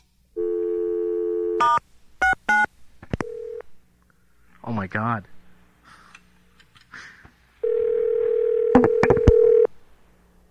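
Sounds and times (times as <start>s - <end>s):
telephone ringing tone on a call: 0.4s - 1.6s, 3.2s - 3.7s, 7.6s - 9.7s
speech: 4.8s - 5.4s.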